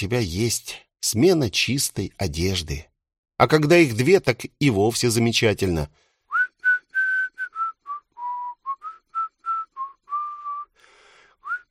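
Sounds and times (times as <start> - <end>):
speech: 0.0 - 6.0
man whistling a lively old folk tune: 6.3 - 10.8, 11.4 - 11.6.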